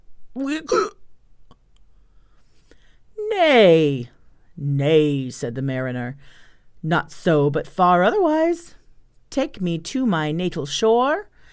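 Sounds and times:
speech: 0.4 - 1.0, 3.3 - 11.3
voice imitating hiccups: 0.4 - 1.7.

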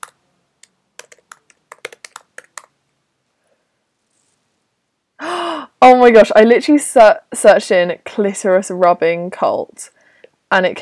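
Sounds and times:
quick light typing on a computer keyboard: 1.0 - 2.7
speech: 5.9 - 10.8.

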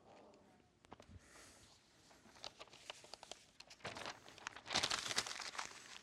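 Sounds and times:
paper sheets crinkling and rustling as they're handled: 2.1 - 6.0.

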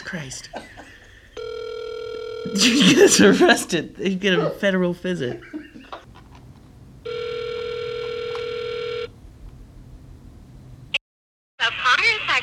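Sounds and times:
speech: 0.0 - 0.7, 2.4 - 5.6
telephone ringback tone over a quiet line: 1.4 - 2.9, 7.0 - 9.1
laughter: 2.5 - 3.8, 5.1 - 6.1
click as the phone call connects: 7.1 - 9.1.

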